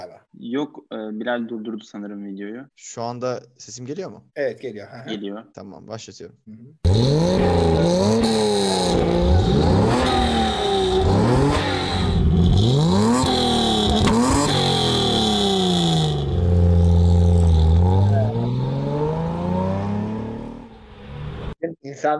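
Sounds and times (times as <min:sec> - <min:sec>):
speech: 0:00.0 - 0:10.1, 0:21.8 - 0:22.1
Mercedes race car engine revving through gear shifts: 0:06.9 - 0:21.6.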